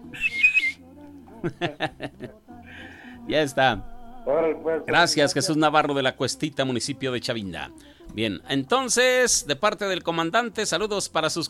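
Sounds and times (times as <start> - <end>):
person giving a short shrill whistle: 0.0 - 0.8
person giving breathy chuckles: 1.4 - 2.4
speech: 1.4 - 11.4.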